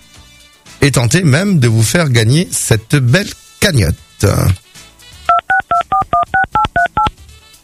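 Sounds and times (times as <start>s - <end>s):
speech: 0.8s - 4.6s
DTMF touch-tone beeps dialing a home telephone number: 5.3s - 7.1s.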